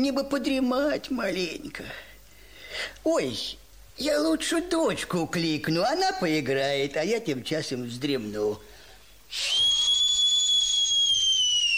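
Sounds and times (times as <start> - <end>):
speech: 0.0 - 2.1, 2.7 - 8.7, 9.3 - 9.7
loud human whistling: 9.3 - 11.7.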